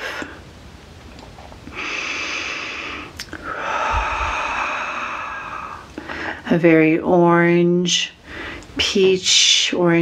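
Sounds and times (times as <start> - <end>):
deep slow breathing during a guided forgiveness meditation: 1.7 - 6.5
speech: 6.5 - 8.2, 8.8 - 10.0.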